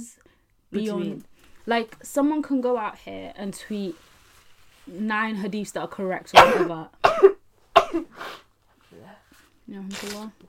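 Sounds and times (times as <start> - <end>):
speech: 0.0 - 4.1, 4.9 - 7.3, 7.9 - 8.4, 9.7 - 10.4
person sneezing: 6.4 - 8.5
person sniffing: 8.0 - 9.1.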